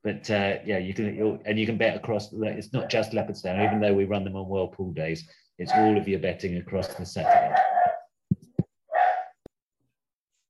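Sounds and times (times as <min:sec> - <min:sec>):
speech: 0:00.0 - 0:07.6
small dog brief yap: 0:07.3 - 0:08.0, 0:08.9 - 0:09.4.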